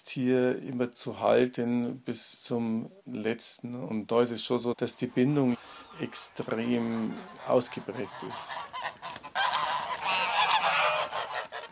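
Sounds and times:
speech: 0.2 - 9.0
geese honking: 4.9 - 11.7.

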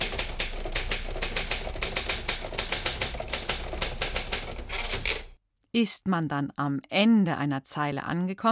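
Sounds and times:
typewriter keys clattering: 0.0 - 5.4
speech: 5.8 - 8.5.

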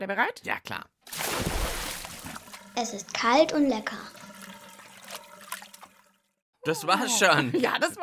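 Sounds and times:
speech: 0.0 - 1.6, 2.8 - 4.3, 6.6 - 8.0
water sloshing and splashing: 1.0 - 6.4.

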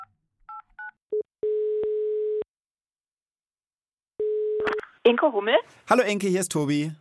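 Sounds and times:
electronic telephone ringing tone: 1.4 - 2.4, 4.2 - 4.6
speech: 5.1 - 6.9.

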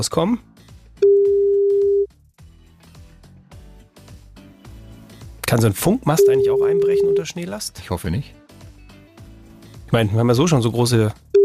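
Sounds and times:
speech: 0.0 - 1.2, 5.5 - 8.4, 9.9 - 11.3
telephone ringing tone of an outgoing call: 1.0 - 2.1, 6.2 - 7.2.

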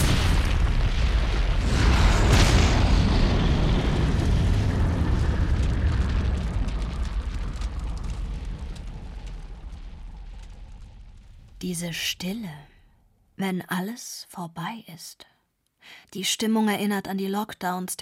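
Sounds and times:
gas station explosion: 0.0 - 11.7
sustained crackling rumble after gas station explosion: 0.0 - 13.4
speech: 11.7 - 12.7, 13.4 - 18.0.

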